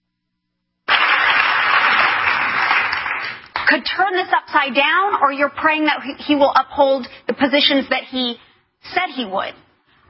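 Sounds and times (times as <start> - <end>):
audience applause: 0.9 - 3.6
speech: 3.7 - 10.0.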